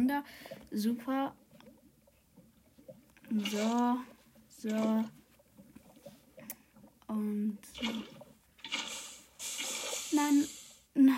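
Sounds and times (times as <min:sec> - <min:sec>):
speech: 0:00.1 - 0:01.4, 0:03.3 - 0:05.2, 0:07.1 - 0:08.8, 0:10.1 - 0:11.1
water gushing and pouring: 0:03.3 - 0:06.2, 0:07.7 - 0:10.8.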